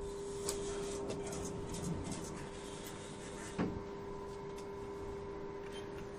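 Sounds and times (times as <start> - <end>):
steady mechanical hum: 0.0 - 6.1
glass lift doors sliding open at a fourth-floor library: 0.8 - 2.6.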